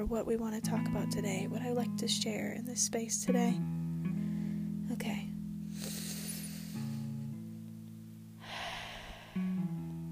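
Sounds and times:
speech: 0.0 - 3.8, 5.0 - 5.2
slow deep breath: 4.1 - 4.7, 5.7 - 7.2, 8.4 - 10.0
steady sustained low tones: 8.4 - 10.0.

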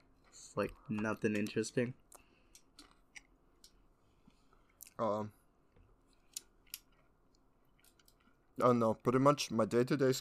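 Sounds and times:
speech: 0.5 - 2.0, 5.0 - 5.4, 8.6 - 10.1
person chewing crunchy food: 2.1 - 5.0, 6.0 - 8.4.

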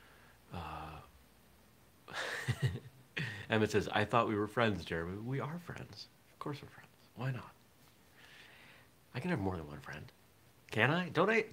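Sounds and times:
person yawning: 0.5 - 1.1
speech: 2.1 - 2.8, 3.5 - 7.6, 9.2 - 11.5.

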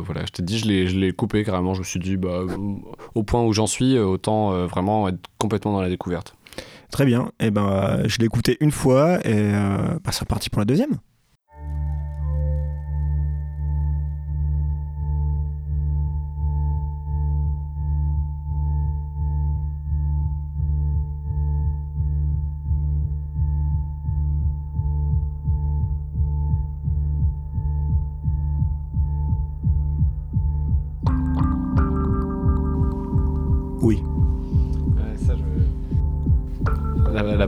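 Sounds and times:
speech: 0.0 - 11.1
crisp rhythmic ticks: 11.5 - 37.4
dark sustained synth pad with pulsing throbs: 11.6 - 37.4.

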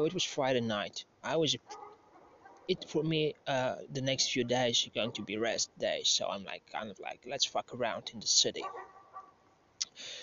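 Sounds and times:
speech: 0.0 - 1.8, 2.7 - 8.9
dogs barking outdoors: 1.6 - 2.8, 5.0 - 5.3, 8.6 - 9.4.

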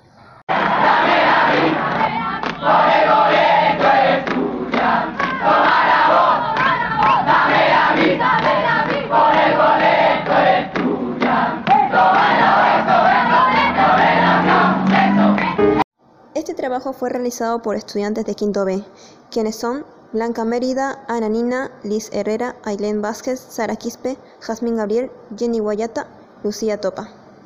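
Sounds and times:
large student protest crowd chanting in unison: 0.5 - 15.8
speech: 16.6 - 27.2.

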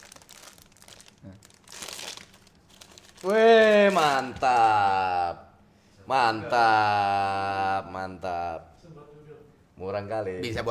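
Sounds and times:
plastic package crinkled and torn open: 0.0 - 4.8
speech: 3.2 - 5.4, 6.1 - 8.6, 9.8 - 10.6.

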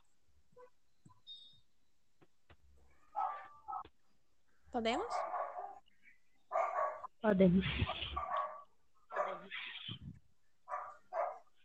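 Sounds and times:
dog lying under a bed barking: 3.1 - 3.9, 5.2 - 5.9, 6.5 - 7.1, 7.9 - 9.6, 10.7 - 11.5
speech: 4.8 - 5.3, 7.2 - 8.1.

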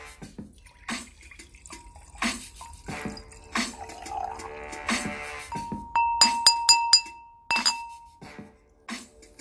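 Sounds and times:
wine pouring into a glass: 0.4 - 5.2
sharp glassy clinks and taps: 5.6 - 8.2.

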